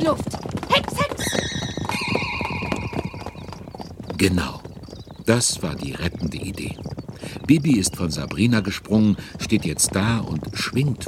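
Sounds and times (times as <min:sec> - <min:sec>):
speech: 0:00.0 - 0:01.1, 0:04.2 - 0:04.6, 0:05.3 - 0:11.0
stallions whinnying trying to break through a gate: 0:00.0 - 0:04.7
stallions stamping hooves trying to break through a gate: 0:00.0 - 0:11.0.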